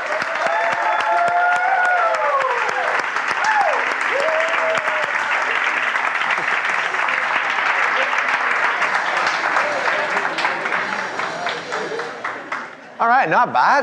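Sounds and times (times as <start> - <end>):
audience whoops and cheers: 0.0 - 5.5
large standing audience applause: 0.0 - 13.0
speech: 13.2 - 13.8.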